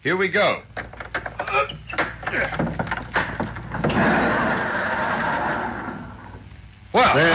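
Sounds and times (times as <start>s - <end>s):
metallic clanks and rattles of large garage door: 0.7s - 5.6s
large garage door rolling up with loud steady rumble: 0.8s - 6.5s.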